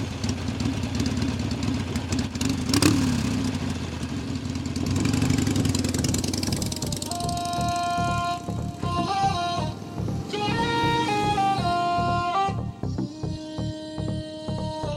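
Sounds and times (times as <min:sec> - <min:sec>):
motorcycle engines idling and revving: 0:00.0 - 0:14.8
brief higher tone: 0:06.3 - 0:14.3.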